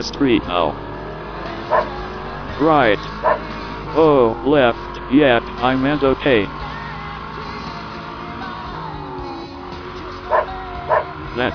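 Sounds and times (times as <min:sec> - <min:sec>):
speech: 0:00.0 - 0:00.9, 0:01.7 - 0:02.0, 0:02.6 - 0:06.6, 0:11.4 - 0:11.5
dog barking: 0:01.7 - 0:02.0, 0:03.2 - 0:03.5, 0:10.3 - 0:11.1.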